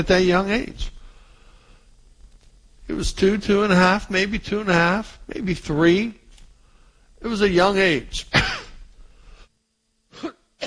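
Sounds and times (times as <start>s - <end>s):
speech: 0.0s - 1.0s, 2.9s - 6.2s, 7.2s - 8.6s
coughing straight into a microphone: 8.3s - 8.8s, 10.1s - 10.6s.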